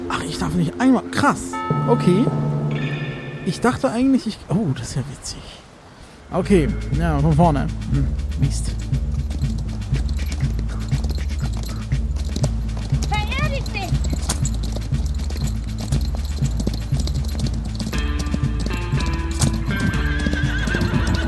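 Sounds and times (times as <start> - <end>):
speech: 0.2 - 2.9, 3.4 - 5.6, 6.3 - 9.1
horse hooves clip-clopping at a trotting pace: 6.8 - 21.2
horse whinnying: 13.6 - 21.2.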